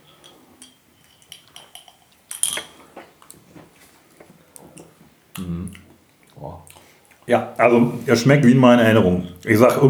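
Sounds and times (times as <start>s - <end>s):
two drinks clinking together in a toast: 0.0s - 3.4s, 9.0s - 9.8s
soft clatter and rustling of tableware: 0.0s - 5.0s
speech: 6.4s - 6.7s, 7.3s - 9.8s.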